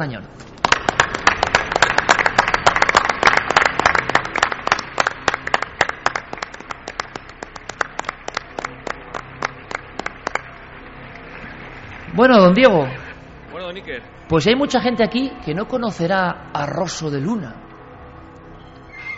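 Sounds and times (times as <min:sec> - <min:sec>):
speech: 0:00.0 - 0:00.5, 0:12.2 - 0:13.0, 0:13.7 - 0:17.6
crowd applause: 0:00.6 - 0:10.6.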